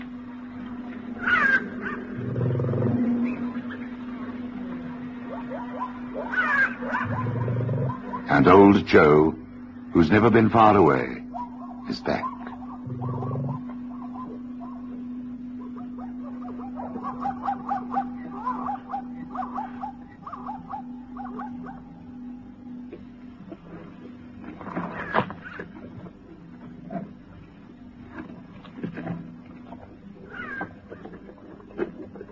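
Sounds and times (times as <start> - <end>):
steady low hum: 0.0 - 32.3
black-backed jackal calling in high wavering yelps and wails: 1.2 - 3.9, 5.2 - 8.6, 11.2 - 15.0, 15.6 - 22.3, 30.3 - 31.2
speech: 8.3 - 9.4, 10.0 - 11.3, 11.9 - 12.3.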